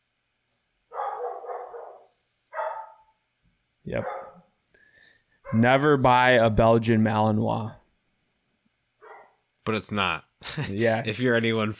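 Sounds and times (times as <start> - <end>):
Chinook dog barking: 0.9 - 3.2, 4.0 - 4.5, 9.0 - 9.4
speech: 3.9 - 4.2, 5.5 - 7.8, 9.6 - 11.7
laughter: 10.4 - 11.0.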